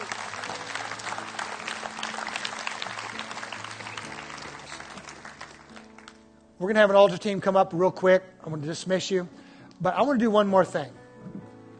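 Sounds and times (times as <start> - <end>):
large group hand clapping: 0.0 - 6.2
speech: 6.6 - 11.0.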